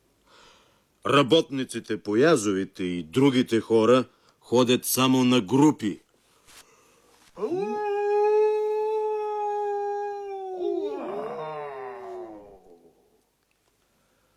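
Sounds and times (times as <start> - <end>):
speech: 1.0 - 6.0, 7.4 - 7.7
werewolf howling in a valley: 7.4 - 13.2.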